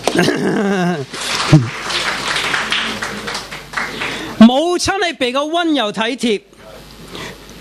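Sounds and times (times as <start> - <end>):
speech: 0.1 - 1.9, 4.8 - 6.6
audience applause: 1.0 - 4.5.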